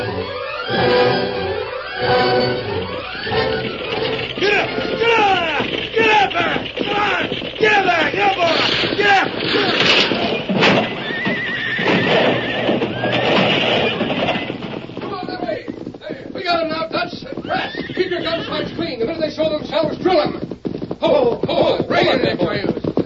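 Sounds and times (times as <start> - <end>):
hooves of galloping horses with riders clattering: 0.0 - 23.0
horses whinnying and neighing: 0.0 - 23.0
people shouting during an ambush on a stagecoach: 3.0 - 10.2.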